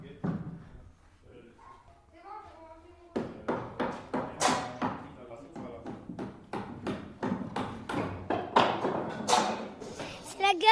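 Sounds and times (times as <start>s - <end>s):
several hammers pounding on wood: 3.1s - 10.2s.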